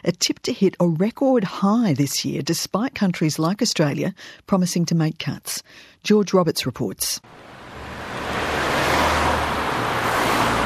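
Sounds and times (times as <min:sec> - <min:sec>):
speech: 0:00.0 - 0:07.6
road traffic of petrol cars and diesel trucks: 0:07.2 - 0:10.6.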